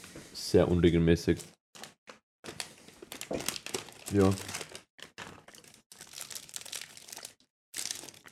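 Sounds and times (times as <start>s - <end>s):
speech: 0.5s - 1.6s, 4.1s - 4.6s
empty crunchy snack bar packet crinkling: 1.8s - 8.3s.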